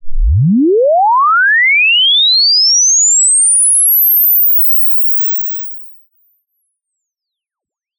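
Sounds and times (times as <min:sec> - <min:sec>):
swept float test signal: 0:00.0 - 0:05.6.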